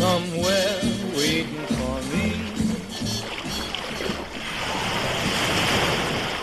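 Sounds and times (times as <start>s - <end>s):
waves and surf in the Irish Sea: 0.0s - 6.4s
faint splashing of swimmers entering the water: 1.7s - 6.4s.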